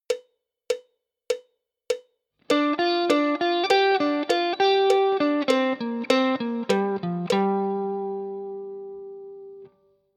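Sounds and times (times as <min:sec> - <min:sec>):
G minor pent guitar lick: 0:02.5 - 0:09.8.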